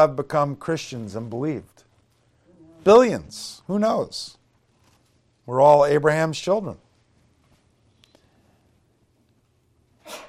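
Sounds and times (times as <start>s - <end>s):
speech: 0.0s - 1.8s, 2.8s - 4.4s, 5.5s - 6.8s
quiet noise: 0.0s - 10.2s
single sharp sneeze: 10.0s - 10.2s.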